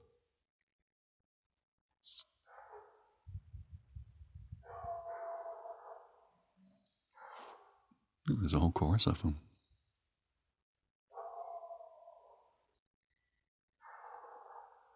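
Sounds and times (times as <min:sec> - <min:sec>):
dog barking outdoors: 0:02.5 - 0:03.2, 0:04.6 - 0:06.4, 0:07.1 - 0:07.8, 0:11.1 - 0:12.6, 0:13.8 - 0:14.9
speech: 0:08.3 - 0:09.5.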